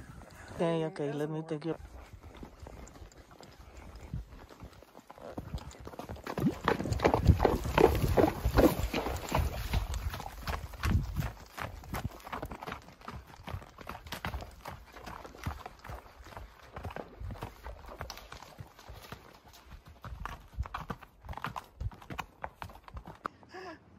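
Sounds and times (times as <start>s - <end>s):
speech: 0.6s - 1.9s
horse hooves clopping on stony ground: 1.7s - 23.4s.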